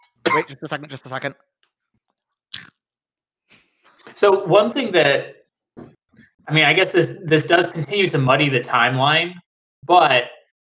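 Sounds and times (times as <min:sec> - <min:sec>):
speech: 0:00.2 - 0:01.5, 0:04.2 - 0:10.4
biting into Saffron Road Crunchy Chickpeas Falafel snacks: 0:02.5 - 0:02.8.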